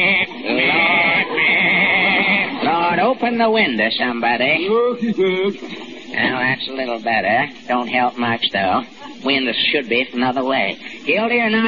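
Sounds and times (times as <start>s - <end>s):
goat bleating in a courtroom: 0.0s - 2.7s
laughter: 0.0s - 3.3s, 4.5s - 6.4s
speech: 3.1s - 11.6s.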